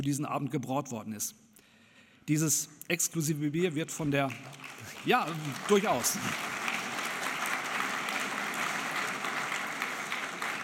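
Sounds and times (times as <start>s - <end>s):
speech: 0.0s - 1.6s, 2.3s - 6.5s
audience applause: 4.3s - 10.6s.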